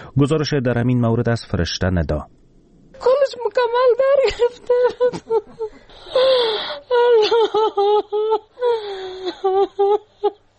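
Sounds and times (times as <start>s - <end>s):
speech: 0.2s - 2.4s, 3.0s - 10.4s
grieving mother wailing and sobbing: 4.0s - 10.4s.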